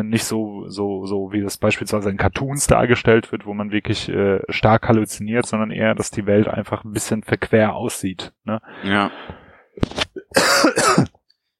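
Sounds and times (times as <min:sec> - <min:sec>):
speech: 0:00.0 - 0:11.2
person coughing: 0:10.2 - 0:11.2.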